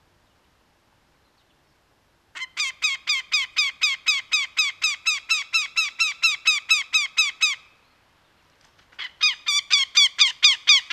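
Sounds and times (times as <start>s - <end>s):
northern goshawk uttering harsh nasal kek calls: 2.4s - 7.8s, 9.0s - 10.9s.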